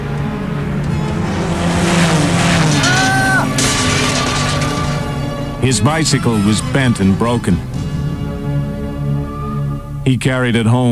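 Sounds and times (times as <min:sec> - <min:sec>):
loud motor engines roaring and revving: 0:00.0 - 0:10.0
tire squeal as a vehicle skids: 0:01.0 - 0:07.7, 0:09.2 - 0:09.9
speech: 0:05.6 - 0:07.8, 0:10.1 - 0:10.8.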